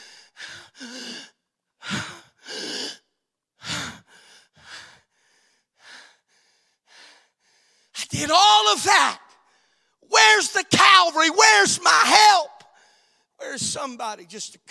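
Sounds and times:
person gasping for breath in ragged heaving breaths: 0:00.0 - 0:08.0
speech: 0:08.2 - 0:09.2, 0:10.1 - 0:12.5, 0:13.4 - 0:14.6.

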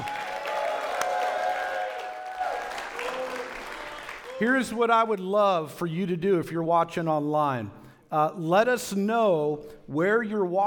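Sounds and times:
church audience cheering and whooping: 0:00.0 - 0:04.6
large church audience applauding: 0:00.0 - 0:04.7
speech: 0:04.4 - 0:10.6.

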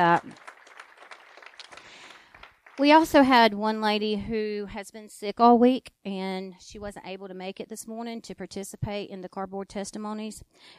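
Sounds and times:
speech: 0:00.0 - 0:00.4, 0:02.8 - 0:10.7
crowd applauding: 0:00.0 - 0:03.4.

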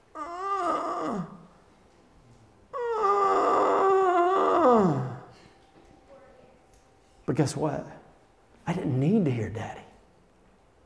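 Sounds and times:
voice imitating a sick man's groan: 0:00.1 - 0:01.6, 0:02.7 - 0:05.4
speech: 0:07.4 - 0:08.0, 0:08.7 - 0:09.8.

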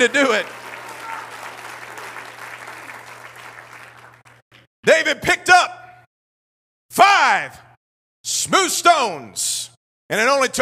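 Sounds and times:
speech: 0:00.0 - 0:00.6, 0:04.9 - 0:05.4, 0:08.4 - 0:10.6
large audience clapping hands: 0:00.0 - 0:04.4.

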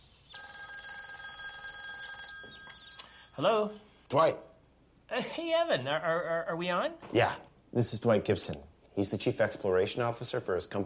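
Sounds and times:
telephone ring tone during outgoing call: 0:00.3 - 0:04.8
speech: 0:03.4 - 0:04.5, 0:05.1 - 0:10.8.

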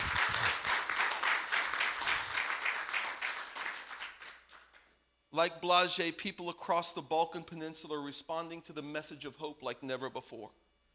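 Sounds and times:
crowd applauding: 0:00.0 - 0:05.0
speech: 0:05.4 - 0:10.6.

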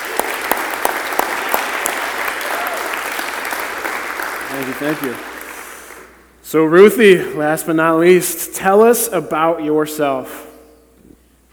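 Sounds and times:
audience applause: 0:00.0 - 0:06.2
speech: 0:04.6 - 0:05.3, 0:06.5 - 0:10.5.

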